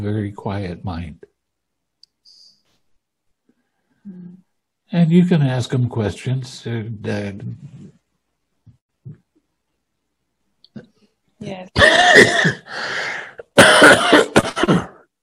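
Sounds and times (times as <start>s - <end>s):
speech: 0.0s - 1.3s, 4.0s - 8.0s, 10.8s - 14.8s
person clearing throat: 11.8s - 12.7s, 13.4s - 15.1s
person coughing with something caught in the throat: 11.8s - 15.0s.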